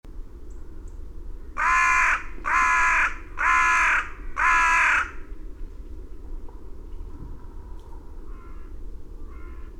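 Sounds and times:
carrion crow Corvus corone rasping caws: 1.6 - 5.2, 8.3 - 9.7.

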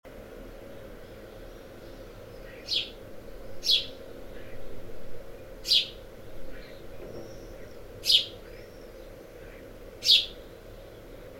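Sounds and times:
Passer domesticus house sparrow chirping: 0.8 - 4.8, 5.5 - 9.2, 10.0 - 11.0.

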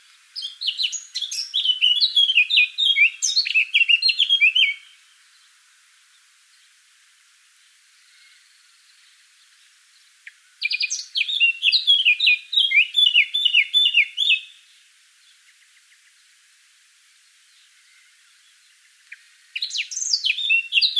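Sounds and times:
Eurasian blackcap Sylvia atricapilla warbling song: 0.1 - 5.0, 10.2 - 14.6, 19.0 - 20.9.

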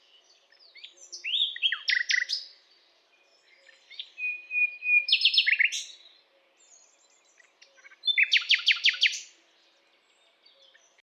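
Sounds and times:
Common nightingale singing: 0.0 - 2.6, 3.3 - 6.0, 7.4 - 9.3.

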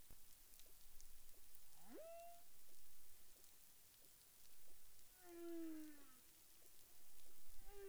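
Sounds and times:
steady crackling background noise: 0.0 - 7.8
humpback whale tonal units in the Caribbean: 1.8 - 2.4, 5.2 - 6.2, 7.6 - 7.8.

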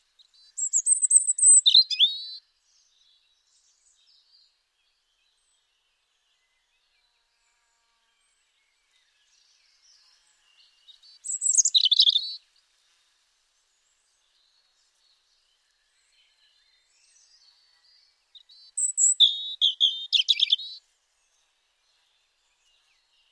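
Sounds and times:
European robin Erithacus rubecula twittering: 0.5 - 2.4, 11.2 - 12.4, 18.6 - 20.8.

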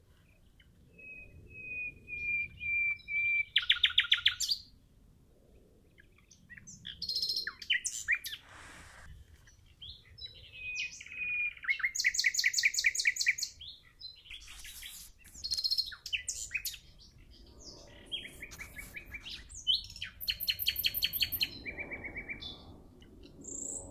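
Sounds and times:
common nightingale Luscinia megarhynchos singing: 0.9 - 4.7, 6.0 - 8.5, 9.4 - 23.8
rustling noise: 8.3 - 9.6, 14.3 - 15.6, 17.8 - 19.7.

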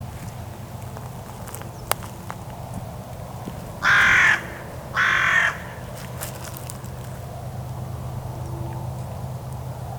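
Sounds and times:
steady low rumble of background noise: 0.0 - 9.9
carrion crow giving hoarse drawn-out caws: 3.8 - 6.6.

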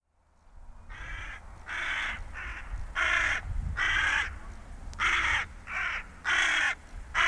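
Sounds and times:
carrion crow Corvus corone giving harsh grating caws: 0.9 - 4.4, 5.0 - 7.2.

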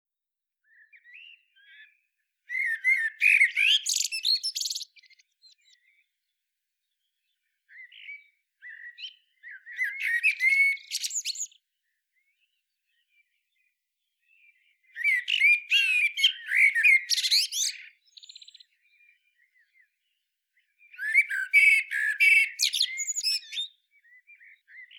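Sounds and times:
common blackbird Turdus merula squeaky chattering notes with brief whistles: 2.5 - 4.9, 9.8 - 11.5, 15.0 - 18.5, 21.0 - 23.7.

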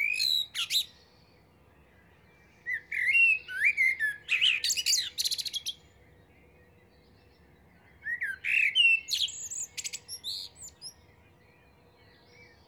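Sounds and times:
common blackbird singing warbled phrase with scratchy twitter: 0.0 - 12.6.

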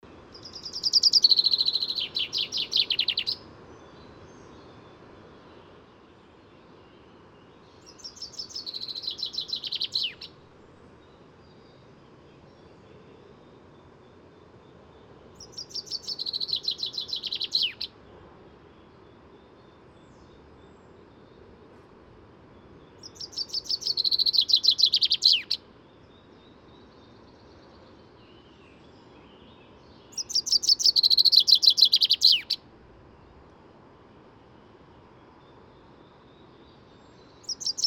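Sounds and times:
Fringilla coelebs singing: 0.3 - 4.0, 7.7 - 10.4, 15.4 - 17.9, 22.9 - 25.6, 29.3 - 32.6, 37.2 - 37.8.

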